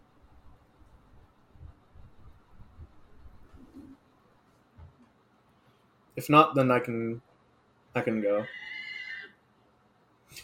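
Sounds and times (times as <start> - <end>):
speech: 6.2 - 7.3, 7.9 - 8.7
horse neighing: 8.4 - 9.4.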